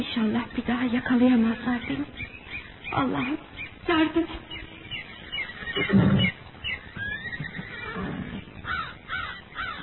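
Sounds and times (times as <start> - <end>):
speech: 0.0 - 4.5, 5.8 - 6.3
horse neighing by a creek: 4.8 - 9.8.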